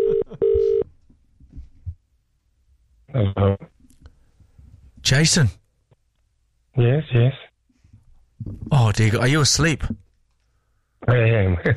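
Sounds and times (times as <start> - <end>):
steady telephone ring tone: 0.0 - 0.8
speech: 3.1 - 3.7, 5.0 - 5.6, 6.8 - 7.5, 8.4 - 10.0, 11.0 - 11.7.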